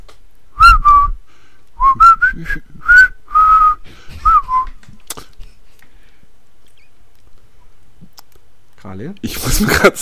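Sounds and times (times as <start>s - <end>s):
person whistling a tune: 0.6s - 1.2s, 1.8s - 4.7s
speech: 2.4s - 3.0s, 8.9s - 9.9s.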